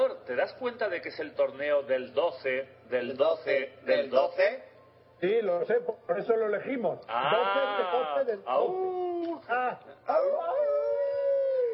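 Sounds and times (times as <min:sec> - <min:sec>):
speech: 0:00.3 - 0:10.4
person imitating a wolf howl: 0:07.1 - 0:11.7.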